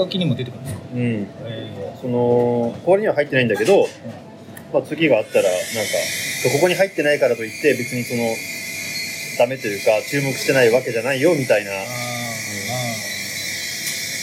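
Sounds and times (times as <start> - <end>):
speech: 0.0 - 8.6, 9.4 - 12.0
espresso machine hissing steam: 5.1 - 14.2.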